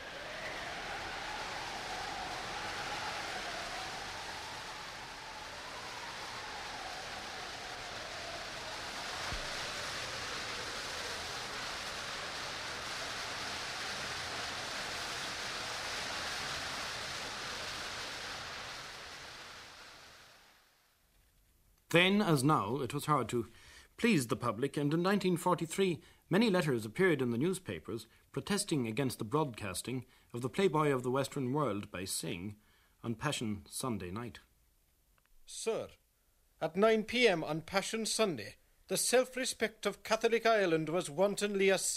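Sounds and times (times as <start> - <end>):
distant thundering waterfall: 0.0 - 20.8
storm wind howling: 0.0 - 20.9
speech: 21.9 - 34.5, 35.5 - 36.0, 36.6 - 41.9.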